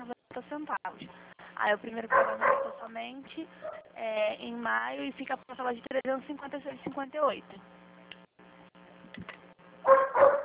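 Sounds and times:
faint low hum: 0:00.0 - 0:10.4
speech: 0:00.5 - 0:07.8
dogs barking at a workplace: 0:02.1 - 0:02.9, 0:03.6 - 0:04.0, 0:09.8 - 0:10.4.

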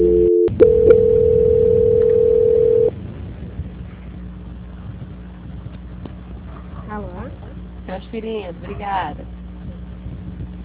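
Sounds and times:
steady telephone tone while a call is being transferred: 0:00.0 - 0:02.9.

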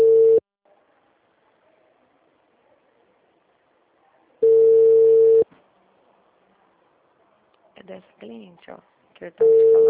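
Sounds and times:
telephone ringback tone on the line as a call is placed: 0:00.0 - 0:00.4, 0:04.4 - 0:05.4, 0:09.4 - 0:09.8
speech: 0:08.6 - 0:09.8.

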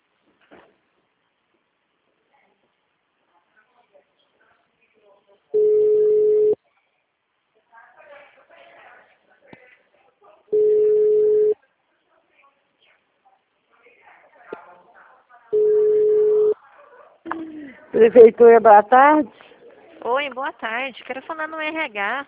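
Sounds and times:
quiet murmuring: 0:02.2 - 0:21.7
telephone busy tones on a call to a city hall with the extension engaged: 0:05.6 - 0:06.6, 0:10.5 - 0:11.6, 0:15.6 - 0:16.6
speech: 0:18.0 - 0:19.4, 0:20.0 - 0:22.2.

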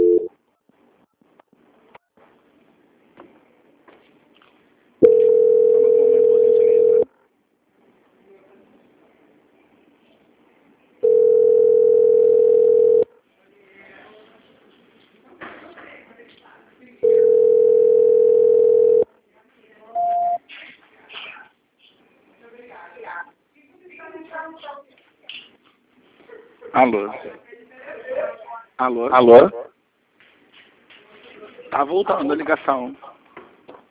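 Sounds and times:
telephone line tone during a call transfer: 0:00.0 - 0:00.3, 0:05.0 - 0:07.0, 0:11.0 - 0:13.0, 0:17.0 - 0:19.0, 0:20.0 - 0:20.4
speech: 0:26.8 - 0:27.4, 0:28.8 - 0:29.6, 0:31.8 - 0:33.1.

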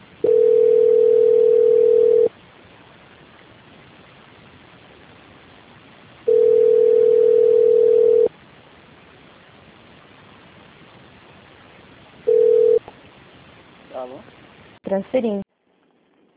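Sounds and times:
faint telephone line hiss: 0:00.0 - 0:16.3
telephone tone on a bank call transferred to another department: 0:00.2 - 0:02.3, 0:06.3 - 0:08.3, 0:12.3 - 0:12.8.

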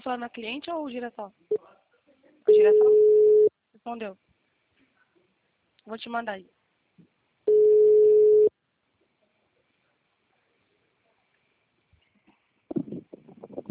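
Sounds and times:
speech: 0:00.0 - 0:01.8, 0:02.5 - 0:03.1, 0:03.8 - 0:04.3, 0:05.8 - 0:07.1
telephone tone as a call is placed: 0:02.5 - 0:03.5, 0:07.5 - 0:08.5.

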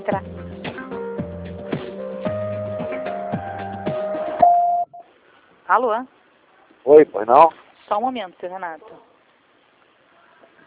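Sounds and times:
speech: 0:00.1 - 0:00.4, 0:05.7 - 0:06.2, 0:06.8 - 0:09.1
long steady telephone tone: 0:04.4 - 0:05.1.

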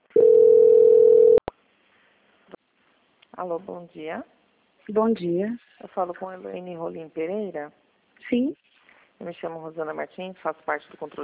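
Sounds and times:
telephone line tone during a call transfer: 0:00.2 - 0:01.4
speech: 0:03.4 - 0:11.2.

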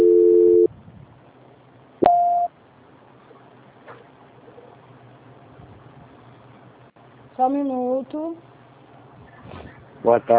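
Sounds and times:
telephone line tones during a call transfer: 0:00.0 - 0:00.7, 0:02.0 - 0:02.5
speech: 0:07.4 - 0:08.5, 0:10.0 - 0:10.3.

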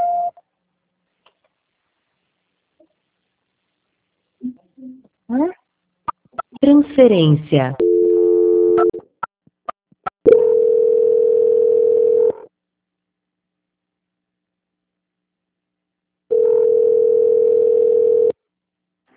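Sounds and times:
speech: 0:06.7 - 0:07.8
automated telephone answering system tones on a phone line: 0:07.8 - 0:09.0, 0:10.3 - 0:12.4, 0:16.3 - 0:18.3.

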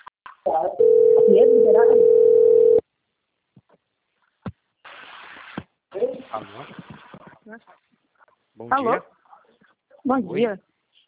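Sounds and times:
speech: 0:00.4 - 0:02.6, 0:06.0 - 0:06.9, 0:07.5 - 0:07.9, 0:08.6 - 0:09.2, 0:10.0 - 0:10.7
telephone dial tone while placing a call: 0:00.8 - 0:02.8
short burst of telephone line hiss: 0:04.8 - 0:07.3.

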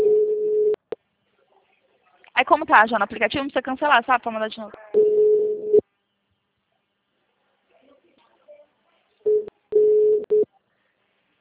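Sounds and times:
telephone busy tone after a dropped call: 0:00.0 - 0:00.8, 0:09.3 - 0:10.4
speech: 0:02.5 - 0:05.2.

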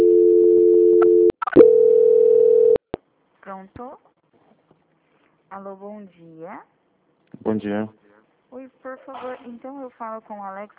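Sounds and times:
telephone tone while a call is transferred: 0:00.0 - 0:02.8
speech: 0:03.6 - 0:04.1, 0:05.5 - 0:10.7.

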